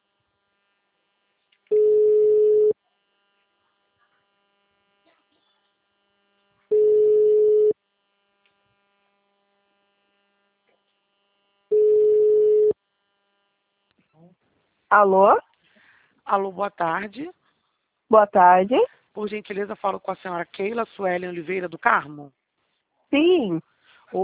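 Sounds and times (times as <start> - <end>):
telephone ringback tone while placing a call: 1.7 - 2.8, 6.7 - 7.8, 11.7 - 12.8
speech: 14.9 - 15.5, 16.3 - 17.4, 18.1 - 22.4, 23.1 - 24.2.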